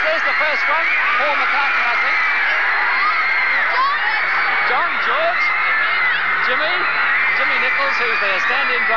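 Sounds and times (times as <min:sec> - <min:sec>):
large crowd of fans screaming: 0:00.0 - 0:08.9
speech: 0:00.6 - 0:02.1, 0:07.7 - 0:08.9.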